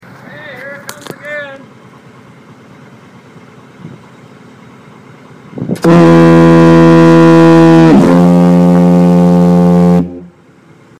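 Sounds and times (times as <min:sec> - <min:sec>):
East Brother Light diaphone foghorn: 0:05.8 - 0:10.4.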